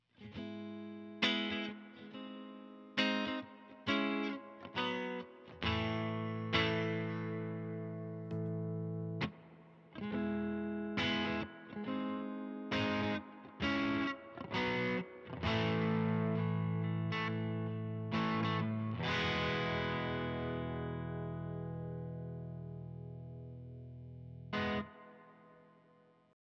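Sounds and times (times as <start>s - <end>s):
electric guitar through a reverb amp at volume three: 0.2s - 25.7s.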